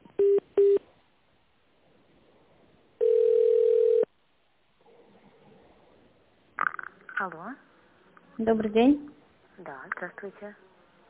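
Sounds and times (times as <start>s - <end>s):
steady telephone tone while a call is connected: 3.0s - 4.1s
speech: 7.2s - 7.7s, 8.4s - 10.7s.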